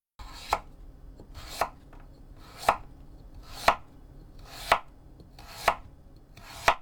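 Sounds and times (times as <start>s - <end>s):
faint kitchen background: 0.0s - 6.7s
knife chopping carrots on a cutting board: 0.2s - 6.7s.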